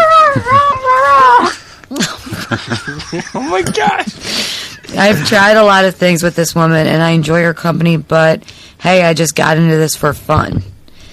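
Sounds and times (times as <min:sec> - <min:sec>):
person imitating a dog barking: 0:00.0 - 0:01.5
laughter: 0:00.3 - 0:05.7
speech: 0:02.5 - 0:10.8.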